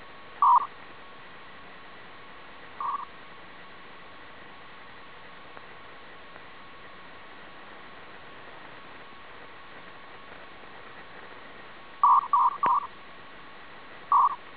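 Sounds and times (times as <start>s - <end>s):
250 Bd FHSS radio data signal from ARQ system in FH mode: 0.4s - 0.8s, 2.8s - 3.2s, 12.0s - 13.0s, 14.1s - 14.5s.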